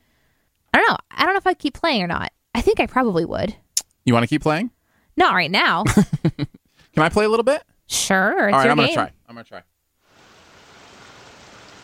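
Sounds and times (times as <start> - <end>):
speech: 1.4 - 9.7
water burbling along a babbling brook: 10.1 - 11.8.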